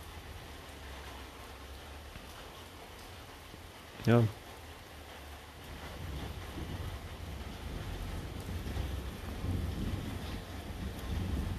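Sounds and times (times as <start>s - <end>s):
steady rain falling outdoors: 0.0s - 11.5s
speech: 4.1s - 4.4s
wind buffeting the microphone: 5.7s - 11.5s.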